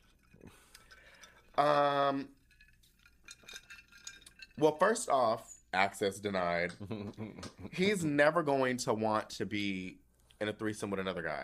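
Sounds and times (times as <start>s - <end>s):
glasses of juice clinking in a toast: 0.1s - 5.2s
speech: 1.6s - 2.4s, 4.6s - 11.4s.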